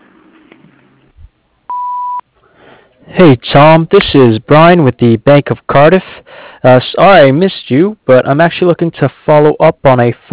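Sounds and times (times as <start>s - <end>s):
answering machine beep: 1.7s - 2.2s
speech: 3.2s - 10.3s.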